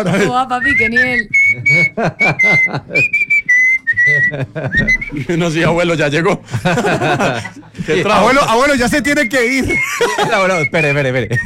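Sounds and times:
laughter: 0.0 - 0.6, 1.6 - 3.2, 4.0 - 5.7, 6.3 - 8.5, 9.4 - 10.7
speech: 0.0 - 3.3, 4.0 - 11.4
grandfather whistling a slow bolero melody: 0.5 - 5.3, 9.2 - 11.4.

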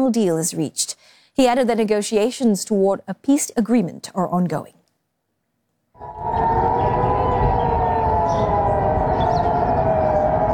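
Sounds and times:
speech: 0.0 - 4.8
civil defense air raid siren wailing in Jerusalem: 6.0 - 10.5
low outdoor rumble: 6.0 - 10.5.

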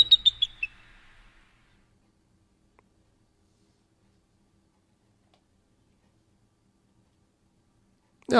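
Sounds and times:
high-pitched bird chirps played as radio station imaging: 0.0 - 1.5.

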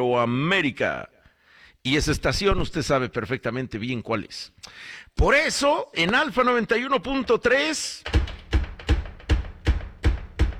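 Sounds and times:
speech: 0.0 - 1.1, 1.8 - 8.2
firm hollow knocks on a door: 8.0 - 10.5.

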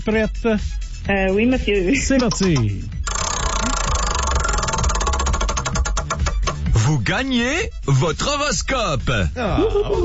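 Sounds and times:
speech: 0.0 - 3.0, 6.9 - 10.0
prize wheel spinning with ticking clicks: 2.2 - 6.8.

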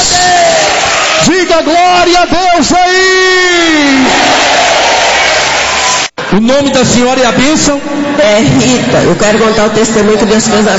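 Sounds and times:
church congregation applauding and cheering during a service: 0.0 - 6.2
speech: 1.2 - 4.7, 6.3 - 10.7.

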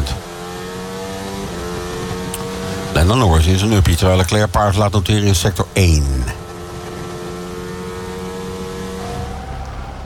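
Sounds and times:
muffled onboard Formula 1 car engine droning: 0.0 - 10.0
speech: 3.0 - 6.4.

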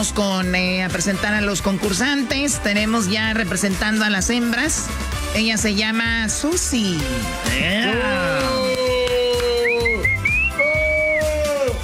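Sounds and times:
speech: 0.0 - 8.6
crowd cheering: 7.5 - 11.8
loud whistling at a woman: 8.2 - 11.6.

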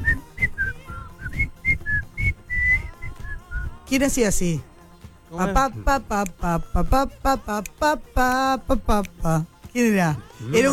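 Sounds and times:
person whistling a bouncy melody from an old advertising jingle: 0.0 - 3.8
speech: 3.9 - 4.7, 5.3 - 10.7.

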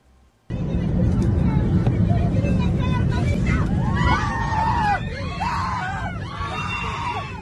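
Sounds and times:
constant airplane cabin roar: 0.5 - 7.4
panicked passengers screaming aboard an airplane: 2.8 - 7.4.

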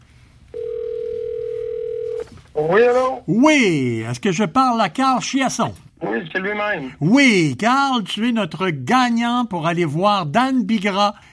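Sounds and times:
telephone ringing tone on an outgoing call: 0.5 - 2.3
speech: 2.6 - 11.3.

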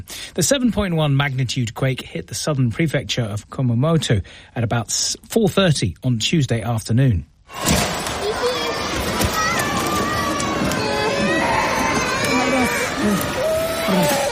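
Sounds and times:
speech: 0.0 - 7.9
objects crashing down from shelves in a Kumamoto retail warehouse during an earthquake: 7.5 - 11.1
crowd of voices shouting: 7.5 - 14.3
children crying: 7.8 - 14.3.

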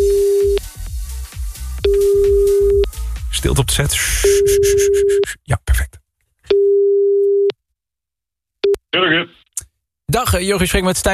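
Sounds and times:
telephone line tone while placing a call: 0.0 - 0.6, 1.9 - 2.9, 4.2 - 5.2, 6.5 - 7.5
speech: 3.4 - 5.9, 8.9 - 9.4, 10.1 - 11.1.

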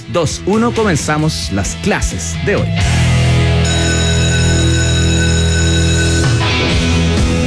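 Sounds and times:
speech: 0.1 - 3.2
school bell ringing: 3.6 - 7.3.

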